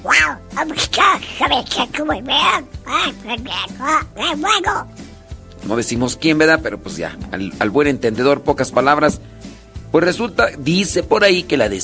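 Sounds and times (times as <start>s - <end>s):
voice imitating a cartoon duck quacking: 0.0s - 4.9s
speech: 0.6s - 5.0s, 5.6s - 9.3s, 9.9s - 11.8s.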